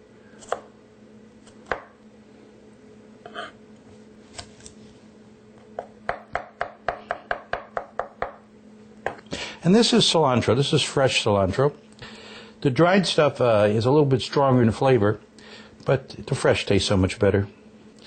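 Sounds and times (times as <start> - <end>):
knife chopping garlic on a board: 0.4 - 0.7, 1.4 - 2.0, 6.1 - 8.4
speech: 9.6 - 11.8, 12.6 - 15.3, 15.9 - 17.6.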